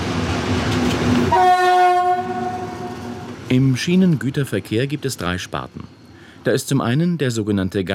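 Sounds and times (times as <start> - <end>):
class 298 diesel locomotive engine rumbling: 0.0 - 7.9
class 298 diesel locomotive horn blast: 1.3 - 3.5
speech: 3.5 - 7.9.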